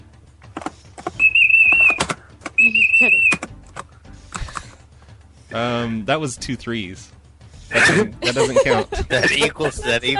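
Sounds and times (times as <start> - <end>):
person whistling a steady sustained high note: 1.2 - 3.4
speech: 5.6 - 10.1
laughter: 7.7 - 10.1.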